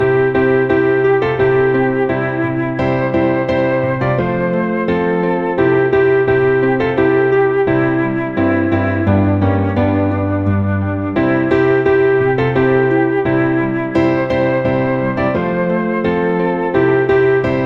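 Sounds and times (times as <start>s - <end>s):
melody: 0.0s - 17.6s.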